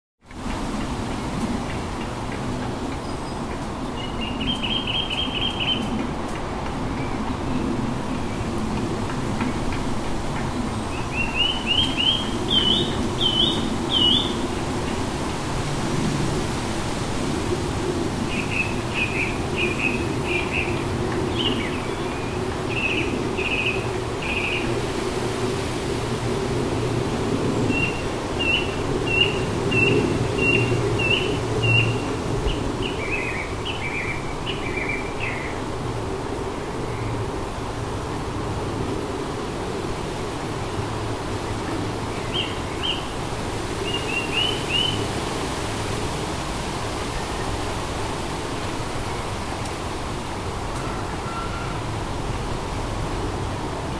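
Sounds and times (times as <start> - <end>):
wind rustling in the trees in Midgery wood: 0.2 - 53.9
birdsong in Midgery wood: 1.1 - 8.6, 10.4 - 15.0, 18.3 - 24.8, 27.7 - 35.6, 42.0 - 43.2, 43.8 - 45.1.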